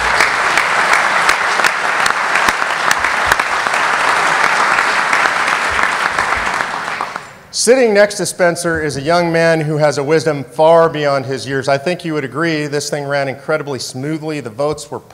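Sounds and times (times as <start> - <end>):
sustained applause from a sizable audience: 0.0 - 7.4
speech: 7.6 - 15.1.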